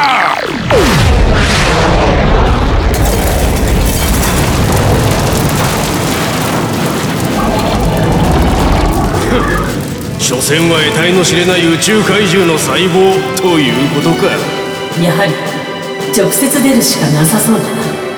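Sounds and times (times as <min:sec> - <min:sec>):
roaring crackling rumble of a sonic cannon: 0:00.4 - 0:14.4
hyper wave sonic cannon firing blast: 0:00.6 - 0:12.9
speech: 0:10.5 - 0:18.0.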